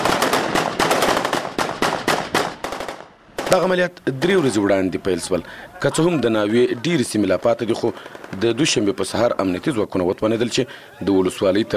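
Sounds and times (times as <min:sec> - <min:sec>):
soldiers firing celebratory gunfire into the air in a district bazaar: 0:00.0 - 0:04.4, 0:07.3 - 0:09.2
speech: 0:03.5 - 0:11.7
laughter: 0:03.6 - 0:09.2, 0:10.2 - 0:11.7.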